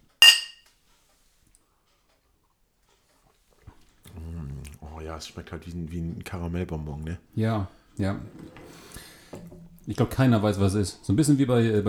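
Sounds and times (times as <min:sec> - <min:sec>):
glasses clinking in a toast: 0:00.2 - 0:00.6
speech: 0:04.9 - 0:08.8, 0:09.9 - 0:11.8.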